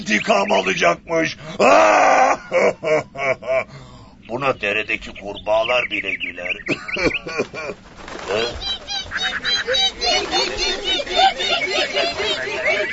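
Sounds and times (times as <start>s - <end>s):
speech: 0.0s - 8.8s
laughter: 1.3s - 3.7s, 6.5s - 12.9s
large flock of birds honking while flying overhead: 4.3s - 12.9s.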